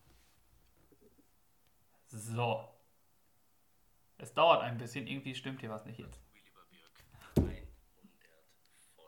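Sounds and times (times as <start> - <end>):
speech: 2.1 - 2.8, 4.2 - 6.3
mobile phone falling to the floor: 7.2 - 7.8.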